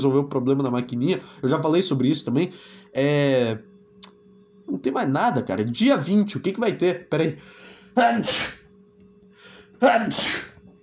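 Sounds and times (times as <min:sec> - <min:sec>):
speech: 0:00.0 - 0:03.7, 0:04.7 - 0:08.6, 0:09.8 - 0:10.5
steady low hum: 0:00.0 - 0:10.8
breathy intake before sneezing: 0:07.4 - 0:08.6, 0:09.3 - 0:10.6
sneezes from a person with a strong allergy: 0:08.0 - 0:08.7, 0:09.8 - 0:10.6.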